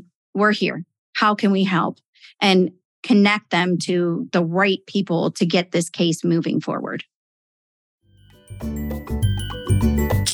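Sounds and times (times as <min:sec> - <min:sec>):
speech: 0:00.4 - 0:07.1, 0:08.6 - 0:10.3
bright notification chime signalling a sale in an online store: 0:08.2 - 0:10.3.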